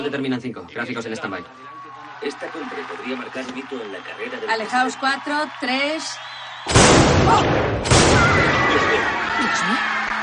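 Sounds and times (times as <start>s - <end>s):
speech: 0.0s - 10.1s
gunshots fired at the president: 6.7s - 8.8s.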